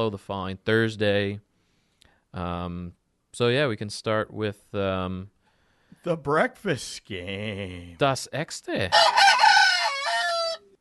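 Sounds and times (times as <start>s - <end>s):
speech: 0.0s - 1.5s, 2.3s - 5.4s, 6.0s - 9.2s
rooster crowing: 8.9s - 10.7s.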